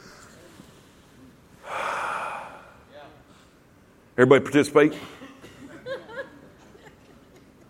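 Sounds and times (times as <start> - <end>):
church congregation inhaling deeply together: 1.6 - 3.6
speech: 4.2 - 5.2.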